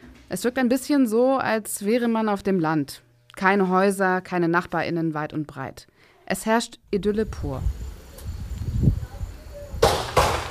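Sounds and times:
speech: 0.3 - 7.8
gunshots: 9.8 - 10.5.

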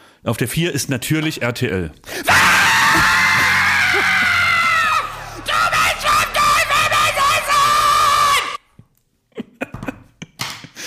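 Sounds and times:
speech: 0.2 - 3.1
audience shouting and screaming: 2.3 - 8.6.

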